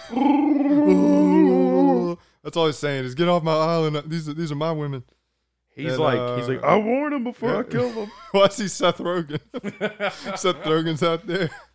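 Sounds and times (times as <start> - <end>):
voice imitating a Wookiee-style howl: 0.0 - 2.2
speech: 0.1 - 0.4, 2.5 - 5.2, 5.8 - 11.7
laughter: 7.5 - 11.7.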